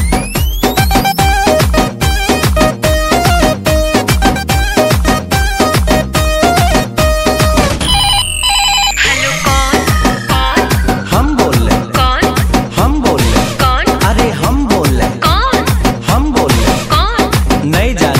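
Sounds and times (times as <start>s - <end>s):
loud driving music track with steady thumping beat: 0.0s - 8.0s, 9.5s - 18.1s
telephone ringtone trilling: 7.8s - 11.1s.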